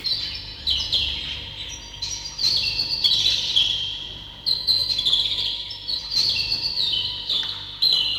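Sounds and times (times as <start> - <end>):
birdsong: 0.0 - 8.1.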